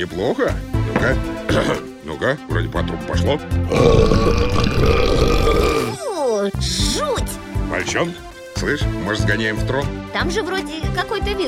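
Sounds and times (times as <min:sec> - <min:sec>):
speech: 0:00.0 - 0:11.4
cartoonish burp after drinking soda in an arcade video game: 0:01.5 - 0:01.9, 0:03.7 - 0:06.0.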